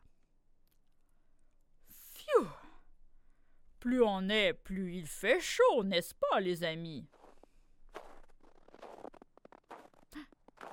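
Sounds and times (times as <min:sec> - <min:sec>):
speech: 0:03.8 - 0:07.2
heavy crunching footsteps: 0:07.1 - 0:10.7.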